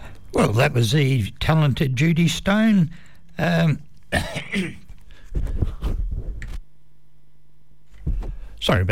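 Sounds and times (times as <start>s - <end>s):
speech: 0.4s - 5.5s, 8.7s - 8.8s
person clearing throat: 4.1s - 4.9s
person coughing: 4.1s - 4.9s.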